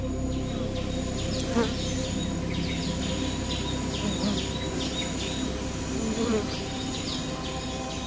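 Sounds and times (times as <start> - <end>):
faint bird chirps: 0.2 - 8.0
bees buzzing past: 2.6 - 8.0.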